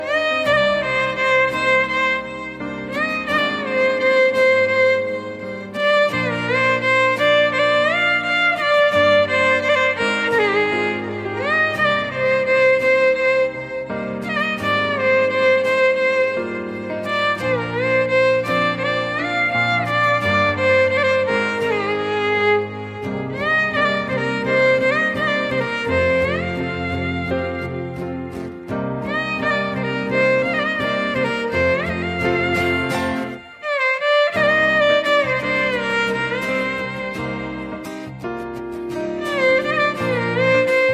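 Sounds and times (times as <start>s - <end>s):
violin love instrumental ringtone: 0.0s - 40.9s.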